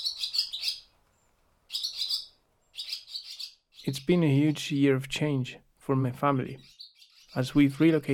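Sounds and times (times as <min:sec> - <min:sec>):
barn swallows twittering inside a barn: 0:00.0 - 0:00.9, 0:01.7 - 0:04.2, 0:06.6 - 0:08.1
speech: 0:03.8 - 0:06.7, 0:07.4 - 0:08.1.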